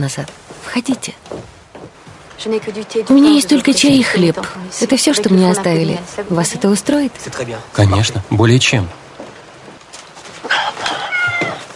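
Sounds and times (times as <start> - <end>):
speech: 0.0 - 1.4, 2.4 - 9.0
faint hiss: 0.0 - 11.7
cat meowing: 10.5 - 11.7.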